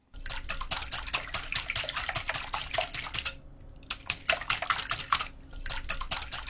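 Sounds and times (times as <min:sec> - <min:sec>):
whisk beating eggs and sugar in a bowl: 0:00.2 - 0:06.4.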